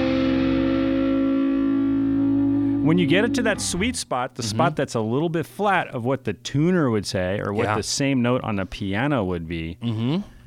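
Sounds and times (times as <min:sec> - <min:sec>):
heavily distorted electric guitar string bend: 0:00.0 - 0:04.0
speech: 0:02.8 - 0:10.4.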